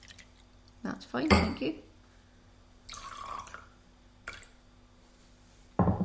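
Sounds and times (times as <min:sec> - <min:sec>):
water poured into a glass of whisky: 0:00.0 - 0:00.5, 0:02.9 - 0:03.7
speech: 0:00.8 - 0:01.9
knock: 0:05.8 - 0:06.0.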